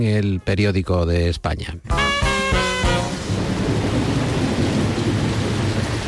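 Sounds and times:
speech: 0:00.0 - 0:02.2
short tonal note: 0:01.9 - 0:03.3
heavy rain pouring in Málaga: 0:01.9 - 0:06.0.

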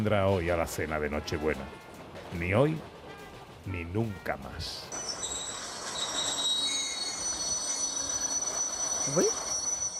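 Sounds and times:
speech: 0:00.0 - 0:02.9, 0:03.6 - 0:05.0, 0:09.0 - 0:09.4
train rumbling while slowing to a stop in the snow: 0:00.0 - 0:09.9
train wheels squealing while slowing to a stop in the snow: 0:04.9 - 0:09.9.

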